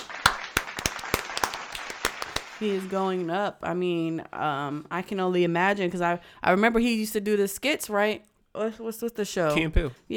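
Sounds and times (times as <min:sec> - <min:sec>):
sparse irregular clapping of a small group or a lone person: 0:00.0 - 0:03.0
speech: 0:02.6 - 0:10.1.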